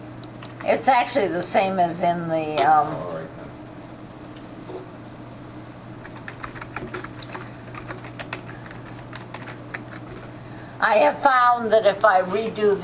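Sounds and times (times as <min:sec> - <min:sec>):
constant low electrical hum: 0:00.0 - 0:12.8
speech: 0:00.6 - 0:03.2, 0:10.8 - 0:12.8
typing on a computer keyboard: 0:06.0 - 0:10.3.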